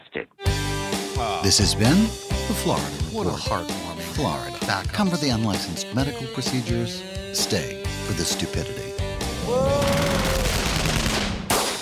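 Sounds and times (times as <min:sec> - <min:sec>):
speech: 0:00.2 - 0:00.4, 0:01.4 - 0:09.8
sharp crack: 0:09.8 - 0:11.8
rapid gunfire: 0:09.9 - 0:11.8.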